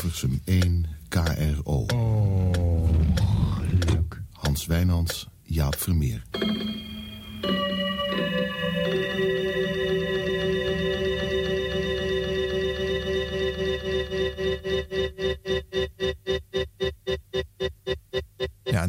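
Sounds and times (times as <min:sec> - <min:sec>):
speech: 0:00.0 - 0:07.6
late-night radio programme instrumental theme tune: 0:06.3 - 0:18.8.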